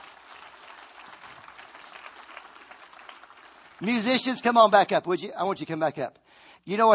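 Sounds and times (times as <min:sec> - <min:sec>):
large audience applauding: 0:00.0 - 0:04.8
speech: 0:03.8 - 0:06.9.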